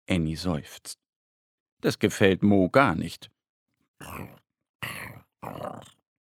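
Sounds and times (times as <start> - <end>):
speech: 0.1 - 1.0, 1.8 - 3.4, 4.0 - 6.0
voice imitating the hungry empty stomach of a little bear growling: 4.0 - 6.0.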